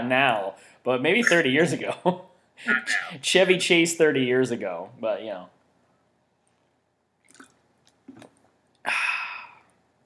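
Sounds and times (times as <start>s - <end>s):
speech: 0.1s - 5.6s
wet mouth sounds of drinking water: 7.2s - 8.8s
breathy exhale after drinking: 8.9s - 9.7s.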